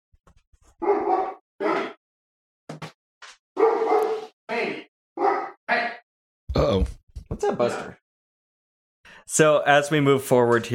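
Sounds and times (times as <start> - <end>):
dog barking in short loud bursts with sharp yips: 0.8 - 2.0, 3.6 - 4.3, 5.2 - 5.6
speech: 6.7 - 8.0, 9.3 - 10.7.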